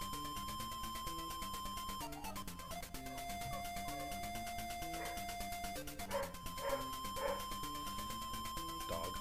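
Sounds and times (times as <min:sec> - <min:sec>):
bright chiptune-style video game music: 0:00.0 - 0:09.2
dog barking in the house: 0:05.0 - 0:05.3, 0:06.1 - 0:07.5.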